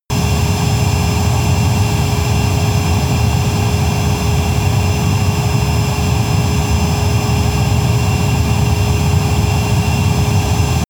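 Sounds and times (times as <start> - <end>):
military jet fighter turbine steady and tonal: 0.1 - 10.8.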